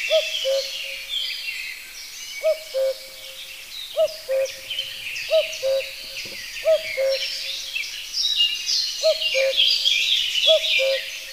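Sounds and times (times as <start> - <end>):
common cuckoo giving its two-note call: 0.0 - 1.1, 2.4 - 7.8, 9.0 - 11.3
busy chorus of other songbirds: 0.0 - 11.3.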